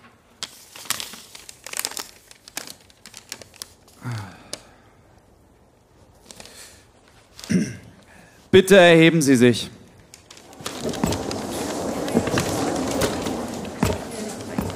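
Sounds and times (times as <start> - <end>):
paper letter crinkling as it is handled and unfolded: 0.4 - 4.0, 6.0 - 7.5, 10.1 - 14.7
speech: 4.0 - 4.4, 8.6 - 9.8.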